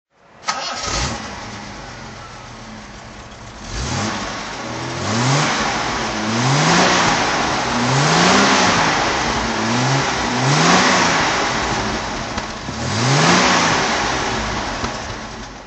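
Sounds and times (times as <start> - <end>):
1976 Daimler Sovereign 4.2 Litre coupe engine revving: 0.5 - 15.6.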